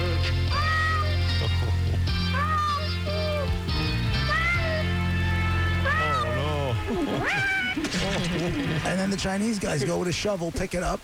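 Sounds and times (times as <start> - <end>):
steady music: 0.0 - 9.9
cat meowing: 0.5 - 1.2, 2.3 - 3.5, 4.2 - 5.0, 5.8 - 7.8
laughter: 1.2 - 2.2, 6.0 - 10.2
speech: 8.5 - 11.0.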